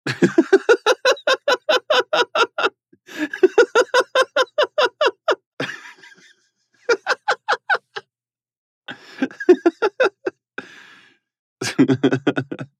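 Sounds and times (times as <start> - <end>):
man laughing: 0.1 - 6.3, 6.9 - 8.0, 8.9 - 10.4, 11.6 - 12.7.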